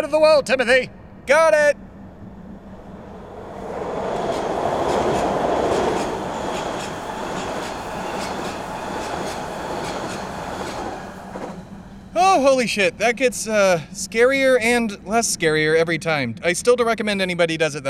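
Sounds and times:
speech: 0:00.0 - 0:01.8, 0:12.2 - 0:17.8
New York subway train roaring past: 0:00.6 - 0:16.0
subway train wheels clattering over rail joints: 0:03.7 - 0:13.1.

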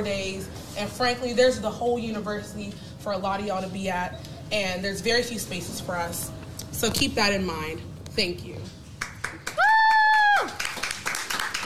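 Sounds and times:
speech: 0:00.0 - 0:08.8
audience clapping: 0:09.0 - 0:11.6.

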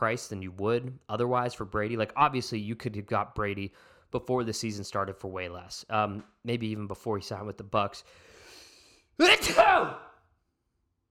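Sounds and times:
speech: 0:00.0 - 0:08.3, 0:09.2 - 0:10.1
sneeze into microphone: 0:09.2 - 0:10.2.

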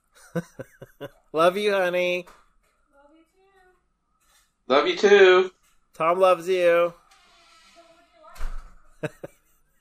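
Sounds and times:
laughter: 0:00.1 - 0:01.2, 0:09.0 - 0:09.8
speech: 0:00.4 - 0:02.4, 0:04.7 - 0:07.0, 0:09.0 - 0:09.3
door shutting with a dull heavy thud: 0:08.3 - 0:08.8.

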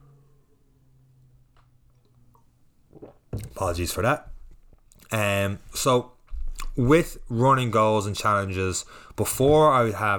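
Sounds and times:
small wet squishing and swallowing sounds: 0:02.3 - 0:05.2, 0:06.2 - 0:06.8
person gulping water: 0:02.9 - 0:05.2, 0:06.3 - 0:06.8
speech: 0:03.0 - 0:04.3, 0:05.1 - 0:06.2, 0:06.8 - 0:10.1.

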